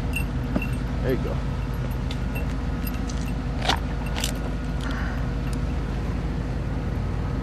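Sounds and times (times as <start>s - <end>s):
engine idling: 0.0s - 7.4s
speech: 1.0s - 1.5s
handcuffs clicking shut on a detainee: 2.8s - 4.9s.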